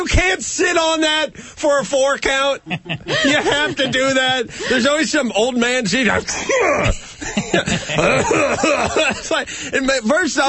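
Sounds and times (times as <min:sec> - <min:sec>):
speech: 0:00.0 - 0:10.4
laughter: 0:02.6 - 0:05.1, 0:06.1 - 0:09.6
voice mimicking coughs and raspy throat clearing: 0:06.3 - 0:07.1.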